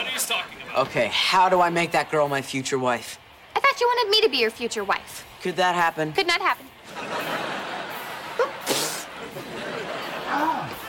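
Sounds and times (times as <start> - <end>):
speech: 0.3 - 3.2, 3.8 - 7.2
laughter: 6.8 - 10.8
person sneezing: 8.4 - 9.1.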